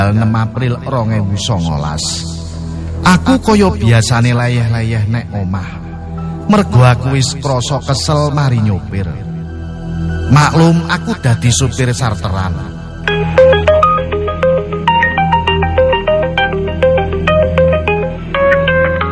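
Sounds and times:
speech: 0.0s - 2.4s, 3.0s - 5.8s, 6.5s - 9.3s, 10.0s - 13.6s
mobile phone ringtone melody at home: 13.1s - 19.0s.

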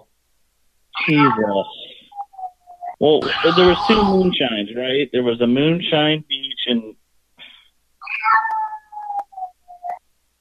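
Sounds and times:
cat meowing: 1.0s - 1.8s, 3.2s - 4.4s
speech: 1.0s - 1.9s, 3.0s - 7.0s.

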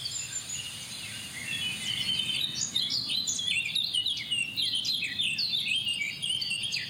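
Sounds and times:
background hiss: 0.0s - 3.5s
Eurasian blackcap song imitating European pied flycatcher: 0.0s - 6.8s.

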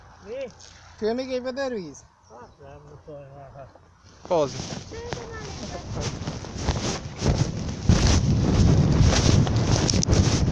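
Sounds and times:
speech: 0.2s - 7.4s
wind blowing across the microphone: 4.6s - 10.4s.

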